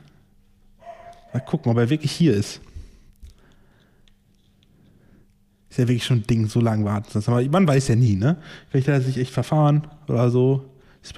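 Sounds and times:
quiet hum: 0:00.0 - 0:11.1
dog giving a short faint bark: 0:00.8 - 0:01.6
speech: 0:01.4 - 0:02.7, 0:05.8 - 0:11.1.

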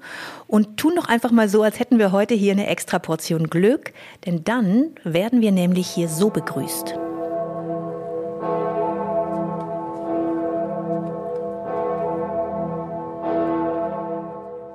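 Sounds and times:
speech: 0:00.5 - 0:07.0
large deep cathedral bell tolling: 0:05.6 - 0:14.7.

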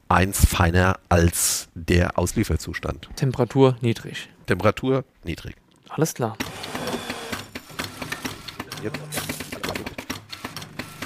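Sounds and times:
speech: 0:00.1 - 0:06.5, 0:08.8 - 0:09.2
automatic espresso machine pump pulsing while brewing an espresso: 0:06.4 - 0:11.0.

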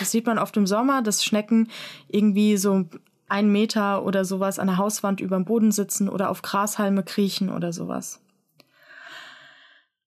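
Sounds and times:
speech: 0:00.0 - 0:08.3
long audible breathy exhale: 0:08.7 - 0:09.9.

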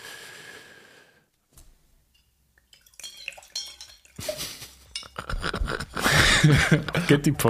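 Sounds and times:
glasses clinking: 0:02.1 - 0:05.4
wine glugging and splashing into glasses: 0:02.2 - 0:05.1
laughter: 0:04.2 - 0:07.4
speech: 0:06.4 - 0:07.4.

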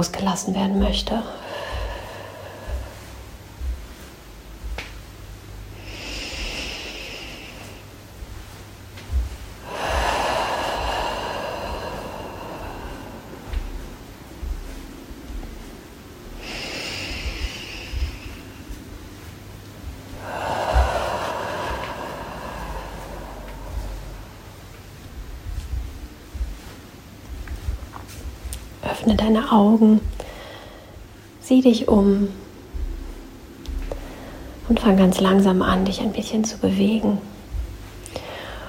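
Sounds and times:
speech: 0:00.0 - 0:01.7, 0:29.2 - 0:30.1, 0:31.5 - 0:32.4, 0:34.9 - 0:37.3
faint low steady drone: 0:00.0 - 0:38.6
slow deep breathing in and out: 0:00.8 - 0:36.1, 0:37.2 - 0:38.6.

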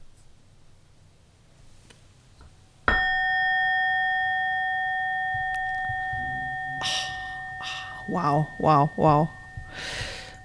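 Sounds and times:
gong struck and ringing out: 0:02.9 - 0:10.4
speech: 0:08.1 - 0:09.9.

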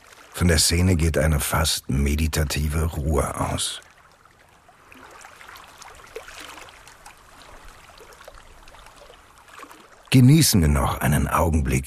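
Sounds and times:
small irregular water splashes: 0:00.0 - 0:00.4, 0:03.7 - 0:10.2
gentle lapping canal water: 0:00.0 - 0:11.0
speech: 0:00.4 - 0:03.9, 0:10.2 - 0:11.8.

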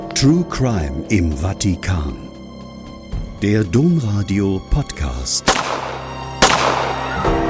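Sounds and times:
speech: 0:00.2 - 0:02.3, 0:03.4 - 0:05.6
gunshots echoing in an open space: 0:05.5 - 0:07.3.

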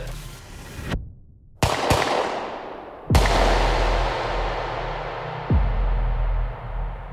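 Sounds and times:
pistol shots fired at point-blank range: 0:01.6 - 0:05.8.

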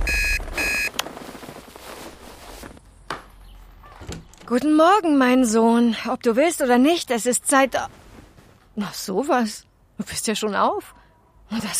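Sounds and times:
loud electronic alarm clock beeping: 0:00.0 - 0:00.9
faint rustling: 0:00.4 - 0:03.0, 0:07.6 - 0:08.9
speech: 0:04.5 - 0:08.0, 0:08.8 - 0:11.7.

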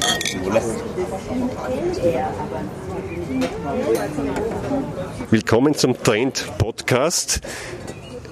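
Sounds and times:
glasses clinking as drinks are knocked together: 0:00.0 - 0:00.6
outdoor crowd murmur in a restaurant garden in the Stadtpark in Vienna: 0:00.0 - 0:08.3
speech: 0:00.5 - 0:07.9.

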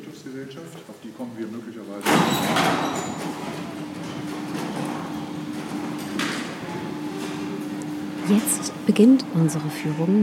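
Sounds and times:
speech: 0:00.2 - 0:04.0, 0:08.3 - 0:10.2
large gate closing in an entrance hall: 0:02.0 - 0:07.5.

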